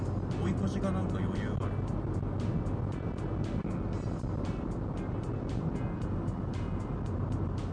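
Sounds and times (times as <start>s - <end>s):
road rumble inside a car moving at speed on an expressway: 0.0s - 7.7s
speech: 0.7s - 1.8s.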